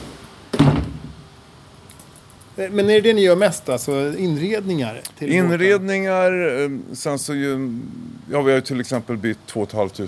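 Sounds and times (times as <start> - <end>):
door shutting with a solid thud in a carpentry workshop: 0.5 - 1.2
speech: 2.6 - 10.0.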